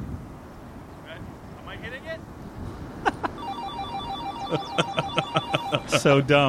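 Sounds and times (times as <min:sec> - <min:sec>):
laughter: 0:03.0 - 0:03.4, 0:04.3 - 0:06.2
electronic phone call ringing tone: 0:03.4 - 0:06.1
speech: 0:04.5 - 0:05.0, 0:05.9 - 0:06.4.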